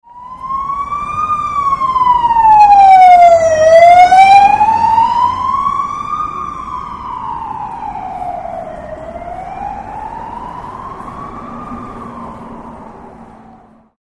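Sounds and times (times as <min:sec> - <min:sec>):
police car siren: 0:00.0 - 0:13.9.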